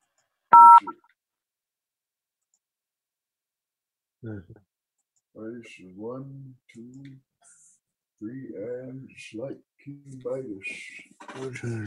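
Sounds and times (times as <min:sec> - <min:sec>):
telephone keypad button tone: 0:00.5 - 0:00.9
speech: 0:04.2 - 0:04.7, 0:05.3 - 0:07.6, 0:08.2 - 0:11.8.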